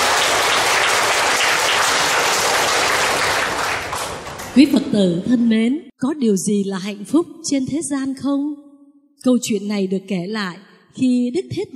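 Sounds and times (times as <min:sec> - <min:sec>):
large crowd applauding in a reverberant temple hall: 0:00.0 - 0:04.8
speech: 0:04.6 - 0:08.6, 0:09.2 - 0:11.7.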